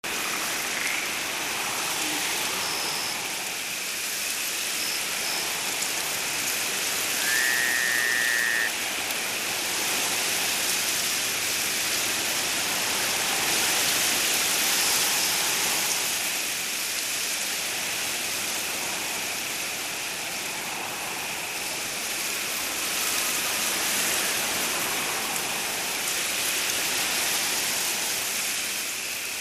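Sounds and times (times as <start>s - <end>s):
forest leaves rustling at night: 0.0s - 29.3s
forest insects at night: 0.1s - 29.3s.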